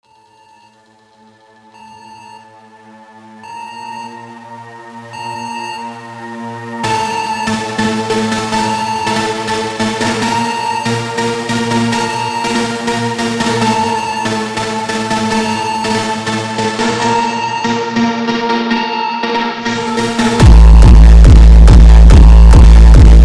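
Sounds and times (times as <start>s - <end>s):
sped up song with reverb: 5.7s - 23.2s.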